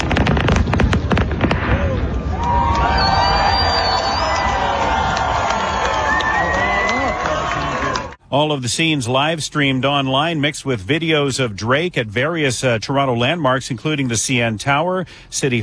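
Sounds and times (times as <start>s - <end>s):
huge fireworks display booming and crackling: 0.0s - 5.4s
dense crowd roar: 1.4s - 8.2s
people cheering: 1.6s - 8.2s
whistles: 2.6s - 4.8s
speech: 8.3s - 15.6s.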